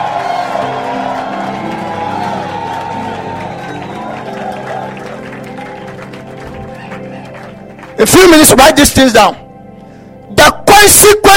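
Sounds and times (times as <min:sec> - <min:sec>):
church audience shouting amen: 0:00.0 - 0:05.9
church audience applauding: 0:00.0 - 0:08.5
speech: 0:08.0 - 0:09.4, 0:10.8 - 0:11.3.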